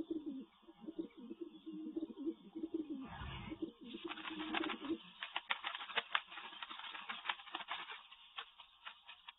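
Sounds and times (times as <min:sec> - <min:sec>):
pigeon cooing in low throaty murmurs: 0:00.0 - 0:05.1
rustling fluttering clicks of a pigeon: 0:04.0 - 0:09.3.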